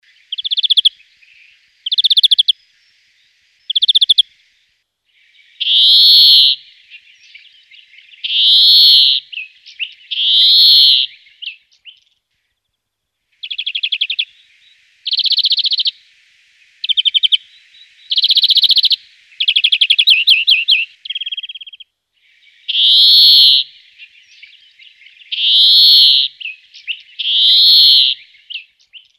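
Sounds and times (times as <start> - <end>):
European greenfinch calls: 0.1 - 2.6, 3.6 - 4.3, 5.2 - 12.1, 13.4 - 16.0, 16.8 - 29.1.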